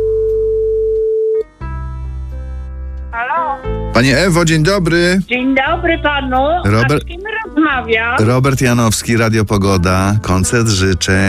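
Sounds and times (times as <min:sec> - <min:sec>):
telephone line tone during a radio request-show call-in: 0:00.0 - 0:01.5
low music: 0:01.4 - 0:11.2
speech: 0:04.0 - 0:11.2.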